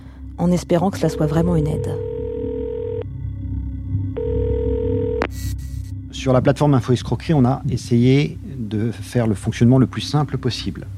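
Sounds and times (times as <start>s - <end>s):
speech: 0.4s - 2.1s, 6.2s - 10.9s
telephone ringing tone while calling a free hotline number: 1.1s - 3.1s, 4.2s - 5.3s.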